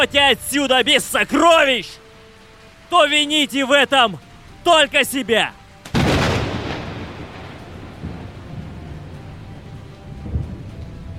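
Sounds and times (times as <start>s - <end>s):
speech: 0.0s - 2.0s, 2.9s - 5.6s
heavy rain downpour: 0.0s - 11.1s
thunder: 5.9s - 11.1s.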